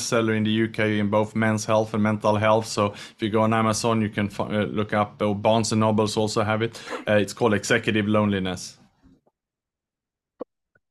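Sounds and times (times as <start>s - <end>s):
speech: 0.1s - 8.8s
faint breathy sounds: 2.9s - 3.2s
short sharp cough: 6.8s - 7.1s
soft catch of breath: 6.8s - 7.1s.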